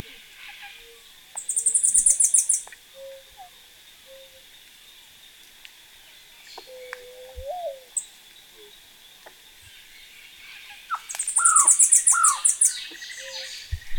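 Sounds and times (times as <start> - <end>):
Hispaniolan spindalis calling: 0.4 - 4.5, 6.4 - 8.8, 10.4 - 13.9.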